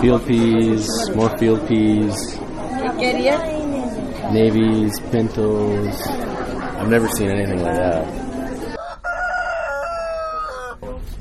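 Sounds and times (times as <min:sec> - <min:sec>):
speech: 0:00.0 - 0:03.6, 0:04.2 - 0:08.2
steady hum: 0:00.0 - 0:08.8
rooster crowing at a live animal market: 0:08.7 - 0:11.0.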